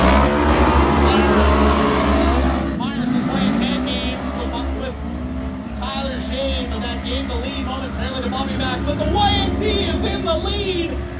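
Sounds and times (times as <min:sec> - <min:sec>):
race car engines roaring bumper to bumper through the split lane: 0:00.0 - 0:11.1.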